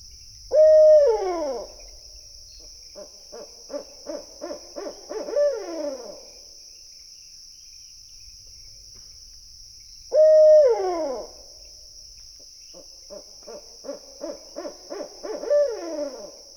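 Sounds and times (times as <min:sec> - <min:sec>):
insect buzz: 0:00.0 - 0:16.5
barred owl hoot series: 0:00.5 - 0:02.0, 0:02.6 - 0:06.4, 0:10.1 - 0:11.4, 0:13.1 - 0:16.5.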